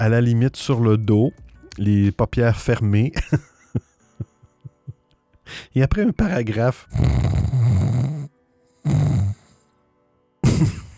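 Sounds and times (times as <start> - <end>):
speech: 0.0 - 3.9, 5.5 - 7.4, 10.6 - 10.8
laughter: 3.2 - 5.0
person imitating snoring with their voice: 6.9 - 9.6.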